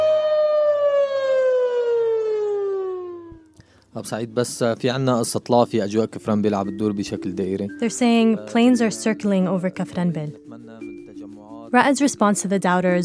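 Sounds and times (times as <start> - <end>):
air raid siren wailing as an airstrike warning: 0.0 - 3.5
speech: 4.0 - 10.9, 11.7 - 13.0.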